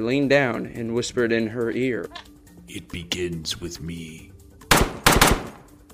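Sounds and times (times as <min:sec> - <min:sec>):
speech: 0:00.0 - 0:04.3
gunshots echoing in a small room: 0:04.7 - 0:05.8.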